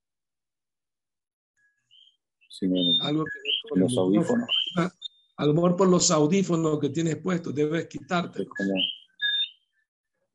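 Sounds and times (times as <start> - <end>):
small birds chirping: 1.6 - 6.2, 6.8 - 10.3
speech: 2.6 - 9.0.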